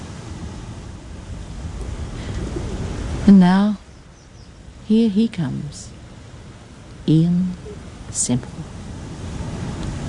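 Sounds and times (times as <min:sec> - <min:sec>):
wind noise: 0:00.0 - 0:04.8, 0:05.5 - 0:10.0
ocean surf breaking on a sea among islands: 0:00.0 - 0:10.0
speech: 0:03.3 - 0:03.8, 0:04.9 - 0:05.9, 0:07.1 - 0:08.7.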